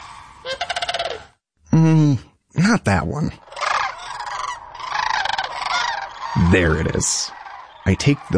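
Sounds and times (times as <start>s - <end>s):
flock of fowl gobbling and honking: 0.0s - 1.3s, 3.4s - 8.3s
speech: 1.7s - 3.4s, 6.4s - 8.3s.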